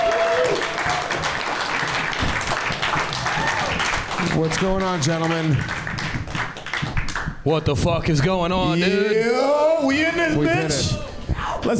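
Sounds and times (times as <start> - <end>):
crowd applauding: 0.0 - 7.4
speech: 4.4 - 5.8, 7.4 - 11.7.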